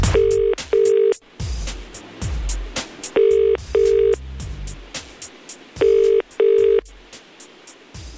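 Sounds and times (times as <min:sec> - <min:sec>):
phone line double ringing tone heard through a handset: 0:00.1 - 0:01.2, 0:03.2 - 0:04.2, 0:05.8 - 0:06.9.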